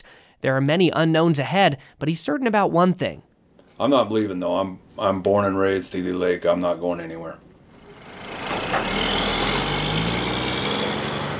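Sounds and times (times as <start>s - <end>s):
speech: 0.4s - 7.4s
timber truck engine rumbling while turning onto the highway out of Seeley Lake, Montana: 3.7s - 11.3s.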